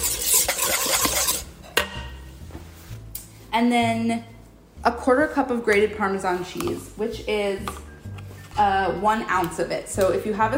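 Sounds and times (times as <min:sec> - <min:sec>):
whisking lemon juice and black pepper in a bowl: 0:00.0 - 0:01.5
speech: 0:03.6 - 0:07.8, 0:08.6 - 0:10.5.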